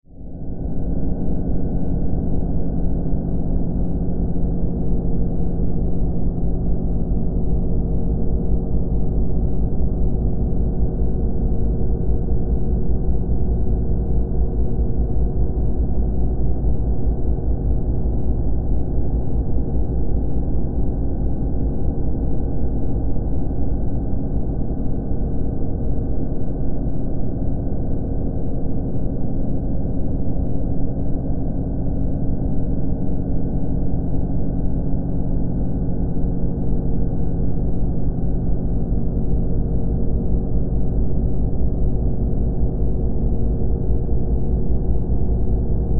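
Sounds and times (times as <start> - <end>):
sci-fi spaceship engine room ambience: 0.1 - 45.9.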